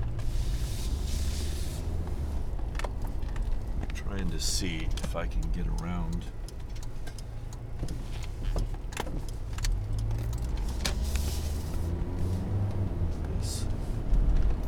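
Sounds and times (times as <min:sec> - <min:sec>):
car engine: 0:00.0 - 0:14.6
low rumble of stopped road traffic: 0:00.0 - 0:14.6
light clicks and rattles: 0:02.5 - 0:11.8
speech: 0:04.1 - 0:06.4, 0:07.8 - 0:08.3.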